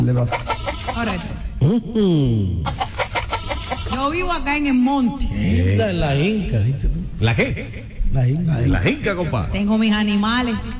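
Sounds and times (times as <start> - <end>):
speech: 0.0 - 2.8, 3.9 - 10.7
person vocally imitating a chicken clucking and squawking: 0.3 - 1.5, 2.6 - 4.2.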